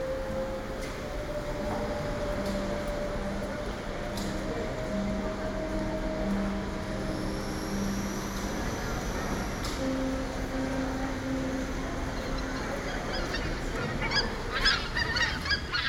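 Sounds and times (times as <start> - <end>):
steady hiss: 0.0 - 15.8
geese honking in a park in Vyborg in early October: 12.3 - 15.8.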